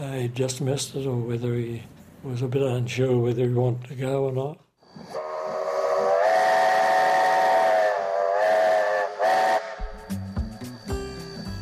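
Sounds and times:
speech: 0:00.1 - 0:05.1
steam train whistle as excursion train leaves Westport: 0:05.1 - 0:11.4.

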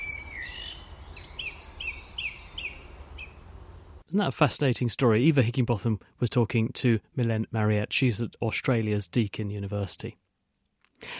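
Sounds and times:
songbirds singing in Cambridge: 0:00.0 - 0:03.6
speech: 0:04.1 - 0:10.2, 0:11.0 - 0:11.1.

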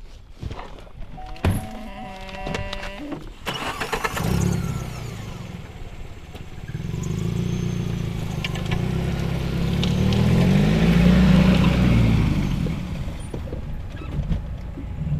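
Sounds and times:
car engine and tyre rumble driving along a road through vineyards: 0:03.0 - 0:15.1.

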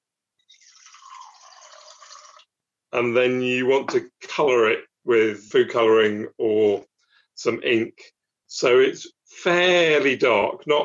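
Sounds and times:
tap water pouring into a jar: 0:00.4 - 0:02.5
speech: 0:02.9 - 0:10.8.

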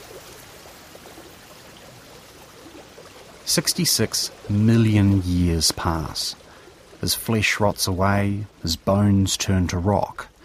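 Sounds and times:
swollen river floodwater rushing with faint gurgling: 0:00.0 - 0:10.4
speech: 0:03.5 - 0:06.4, 0:07.0 - 0:10.3.

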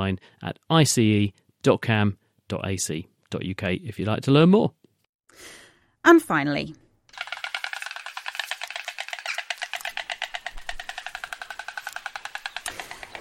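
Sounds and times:
speech: 0:00.0 - 0:06.8
two white stork parents bill-clattering at their nest atop an old oak tree: 0:07.1 - 0:13.1.

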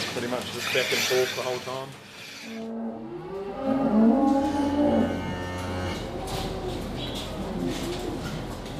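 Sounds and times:
speech: 0:00.2 - 0:04.1
dairy cow mooing in a milking shed during milking: 0:02.5 - 0:08.2
birds cooing and chirping: 0:05.7 - 0:08.4.

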